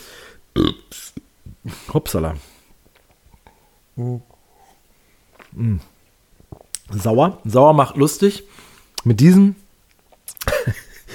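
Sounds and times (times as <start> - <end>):
burp: 0.5 - 1.0
throaty vocal noises: 0.5 - 1.8, 3.4 - 4.8, 5.4 - 6.8
speech: 1.9 - 2.5, 4.0 - 4.3, 5.5 - 5.9, 6.9 - 9.6
laughter: 10.4 - 11.1.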